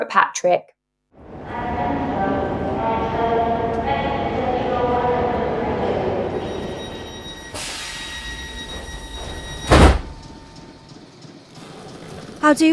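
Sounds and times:
speech: 0:00.0 - 0:00.7, 0:12.4 - 0:12.7
train rumbling on rails: 0:01.2 - 0:12.7
hissing door-like sound: 0:07.6 - 0:08.4.

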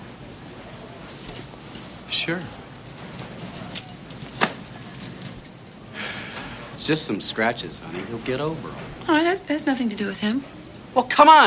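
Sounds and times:
faint low hum: 0:00.6 - 0:11.3
bunch of keys jangling as they are handed back: 0:01.0 - 0:06.8
speech: 0:02.1 - 0:02.6, 0:06.9 - 0:11.4.

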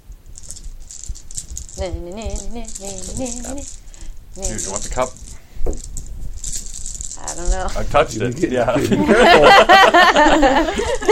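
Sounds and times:
helper dice shaken together during a tabletop game: 0:00.1 - 0:08.9
speech: 0:01.8 - 0:03.8, 0:04.4 - 0:05.9, 0:07.4 - 0:11.1
laughter: 0:08.7 - 0:11.1.

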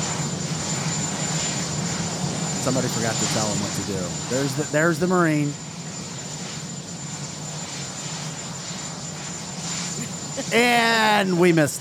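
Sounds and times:
helicopter engine and rotor with high whine: 0:00.0 - 0:11.7
speech: 0:02.6 - 0:05.7, 0:10.5 - 0:11.7.

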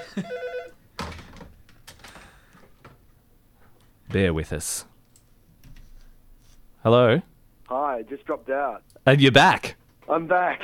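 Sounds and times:
telephone ringing: 0:00.0 - 0:00.8
speech: 0:00.2 - 0:00.4, 0:04.1 - 0:04.9, 0:06.8 - 0:10.6.

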